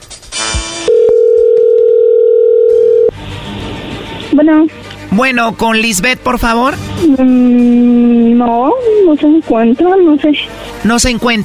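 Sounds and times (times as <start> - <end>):
steady telephone line tone while a call is being placed: 0.9 - 3.1
speech: 4.4 - 11.4.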